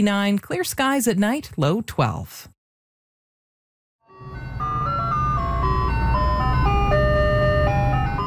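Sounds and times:
speech: 0:00.0 - 0:02.5
ice cream truck jingle: 0:04.0 - 0:08.2.

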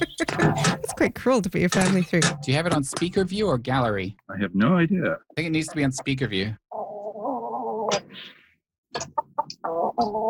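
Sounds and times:
big chicken squawking and clucking: 0:00.0 - 0:01.0, 0:06.7 - 0:08.4, 0:09.1 - 0:10.2
speech: 0:00.0 - 0:06.6, 0:08.9 - 0:10.2.

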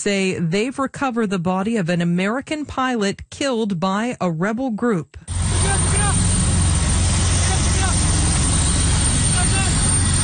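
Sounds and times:
speech: 0:00.0 - 0:05.5
military helicopter descending with low rotor throb: 0:05.3 - 0:10.2.

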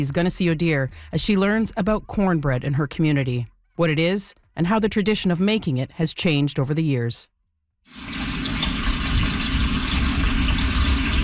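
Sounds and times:
speech: 0:00.0 - 0:08.3
water rushing from a tap into a cooking pot: 0:07.9 - 0:11.2.

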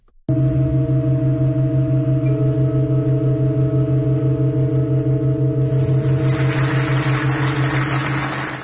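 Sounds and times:
pipe organ holding a sustained chord: 0:00.3 - 0:08.6.

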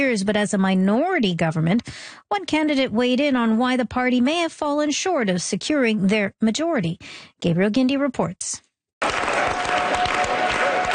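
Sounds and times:
speech: 0:00.0 - 0:09.2
crowd at an election-night gathering clapping: 0:09.0 - 0:10.9.

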